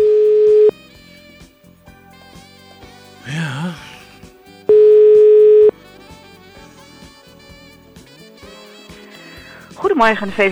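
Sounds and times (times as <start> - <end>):
telephone dial tone as a call is placed: 0.0 - 0.7, 4.7 - 5.7
speech: 10.0 - 10.5.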